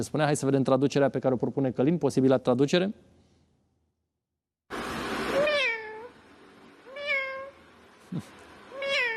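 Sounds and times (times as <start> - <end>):
speech: 0.0 - 3.2, 8.1 - 8.3
cat meowing with drawn-out falling wail: 5.4 - 6.2, 6.9 - 7.6, 8.7 - 9.1.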